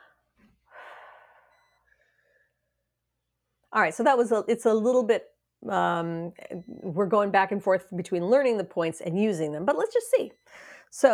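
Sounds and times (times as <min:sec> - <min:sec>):
deep breath in and out during a stress-relief tapping exercise: 0:00.0 - 0:02.7, 0:10.5 - 0:10.9
speech: 0:03.8 - 0:11.1.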